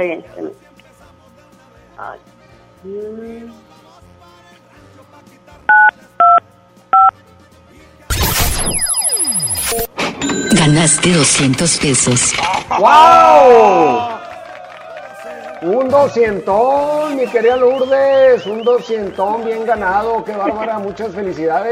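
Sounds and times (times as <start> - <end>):
speech: 0.0 - 0.8, 2.0 - 3.8, 9.7 - 14.2, 15.6 - 21.7
burst of harsh noisy electronic sound: 8.1 - 12.6
telephone keypad dialing tones: 8.9 - 11.0
laughter: 20.1 - 21.0.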